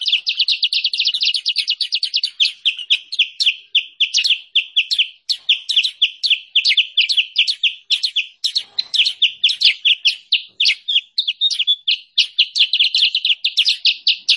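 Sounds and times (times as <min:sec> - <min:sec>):
sooty-headed bulbul song: 0:00.0 - 0:14.3.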